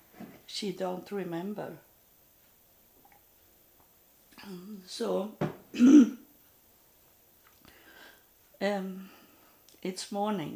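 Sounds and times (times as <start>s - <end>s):
speech: 0.6s - 1.9s, 4.5s - 6.2s, 8.6s - 9.2s, 9.8s - 10.5s
throat clearing: 5.8s - 6.2s.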